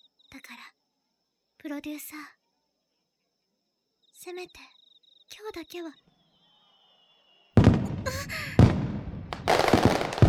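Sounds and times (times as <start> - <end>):
speech: 1.6 - 2.4, 4.2 - 4.8, 5.4 - 6.1
whistling firework rocket rising: 6.2 - 10.2
aerial fireworks booming in the night sky: 7.5 - 10.2
crackling and fizzing firework sparks: 7.6 - 10.2.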